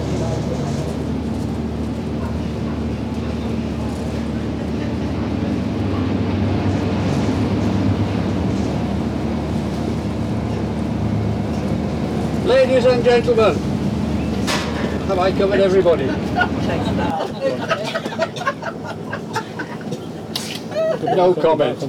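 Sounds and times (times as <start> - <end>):
water wash from a passenger boat: 0.0 - 17.1
indistinct voices murmuring: 0.0 - 21.8
passenger boat engine droning with a low throbbing hum: 0.0 - 21.8
laughter: 12.7 - 21.8
speech: 12.8 - 13.6, 15.2 - 17.8, 21.0 - 21.8.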